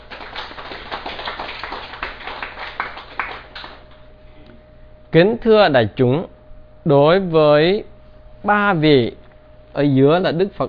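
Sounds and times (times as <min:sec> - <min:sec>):
crowd applauding: 0:00.0 - 0:04.0
speech: 0:05.1 - 0:09.2, 0:09.8 - 0:10.6.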